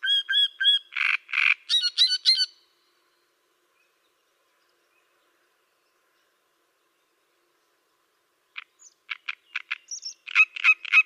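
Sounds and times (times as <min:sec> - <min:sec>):
great reed warbler harsh creaky calls: 0:00.0 - 0:02.6, 0:08.6 - 0:11.0
great reed warbler clicks and rasping notes: 0:08.5 - 0:11.0.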